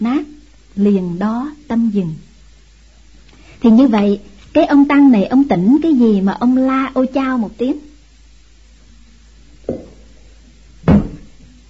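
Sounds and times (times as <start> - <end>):
speech: 0.8 - 2.3, 3.6 - 7.9
knocking: 10.8 - 11.4.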